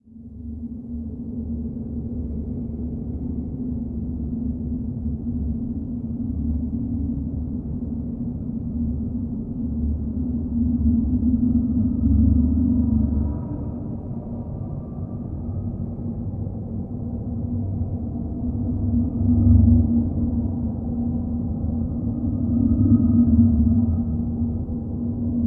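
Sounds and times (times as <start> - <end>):
suspension ambient breath pad from a game: 0.2 - 25.4.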